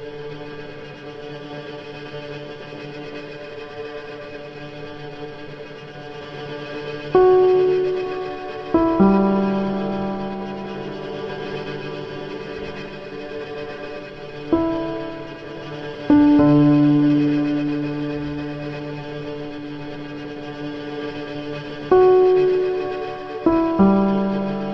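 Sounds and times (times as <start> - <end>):
heavy low piano notes struck slowly with long decay: 7.1 - 24.7
sustained tense string drone: 7.2 - 24.7.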